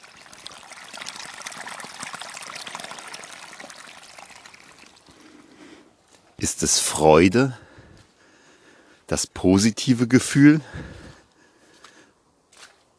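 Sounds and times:
water rushing and trickling: 0.0s - 6.1s
speech: 6.4s - 7.6s, 9.1s - 11.0s.

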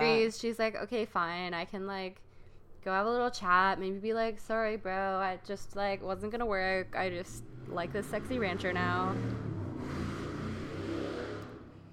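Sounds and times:
speech: 0.2s - 10.0s
motorcycle engine revving and roaring past outside: 6.8s - 11.9s.

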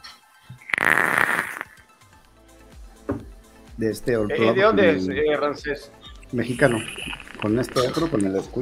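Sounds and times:
vape coil sizzling during a draw of strawberry e-liquid: 0.6s - 1.9s, 6.4s - 8.4s
speech: 3.8s - 8.5s.

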